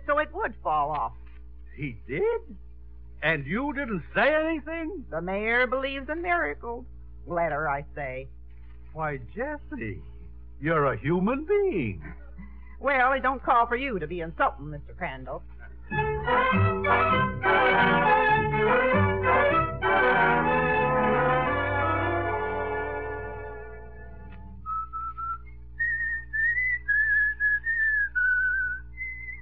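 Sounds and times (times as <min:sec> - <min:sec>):
speech: 0:00.2 - 0:01.2, 0:01.8 - 0:08.4, 0:09.0 - 0:12.2, 0:12.8 - 0:18.9
music: 0:15.8 - 0:24.6
person whistling a short tune: 0:23.9 - 0:29.4.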